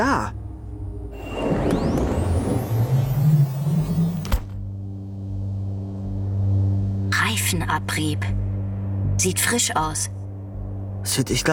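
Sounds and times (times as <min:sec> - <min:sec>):
speech: 0:00.0 - 0:00.4, 0:07.5 - 0:08.4, 0:09.2 - 0:10.2, 0:11.0 - 0:11.5
car engine rumble and whine: 0:00.0 - 0:08.2.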